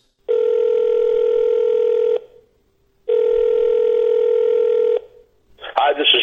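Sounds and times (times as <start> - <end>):
telephone call ringing: 0.3 - 2.3, 3.1 - 5.1
person speaking: 5.6 - 6.2.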